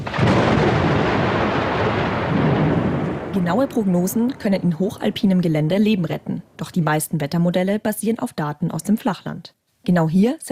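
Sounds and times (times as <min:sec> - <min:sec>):
thunder rumbling in a thunderstorm: 0:00.0 - 0:07.0
speech: 0:03.4 - 0:10.4.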